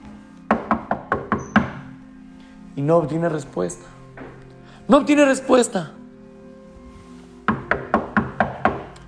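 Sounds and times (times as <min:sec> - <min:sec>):
man knocking on a wooden house door: 0:00.5 - 0:01.8, 0:07.5 - 0:09.0
speech: 0:02.8 - 0:04.0, 0:04.9 - 0:06.0.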